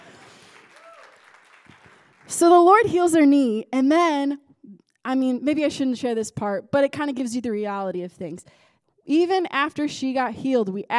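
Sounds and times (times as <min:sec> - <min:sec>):
audience clapping: 0:00.0 - 0:02.5
speech: 0:02.3 - 0:04.4, 0:05.0 - 0:10.9.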